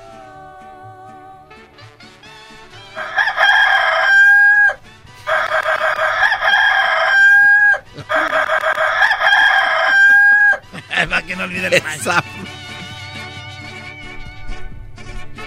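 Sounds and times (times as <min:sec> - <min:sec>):
rooster crow alarm clock: 0:03.0 - 0:10.6
laughter: 0:07.4 - 0:13.0
speech: 0:11.5 - 0:12.4.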